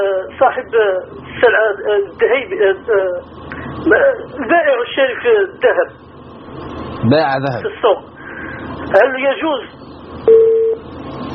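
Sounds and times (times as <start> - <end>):
speech: 0.0 - 8.1, 8.9 - 10.4
steady telephone tone during a phone-in call: 10.2 - 10.9.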